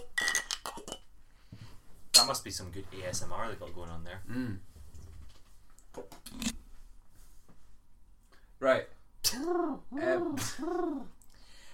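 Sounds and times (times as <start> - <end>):
beer bottles clinking together in a toast: 0.0 - 1.0
speech: 2.3 - 4.7, 6.0 - 6.6, 8.6 - 11.2.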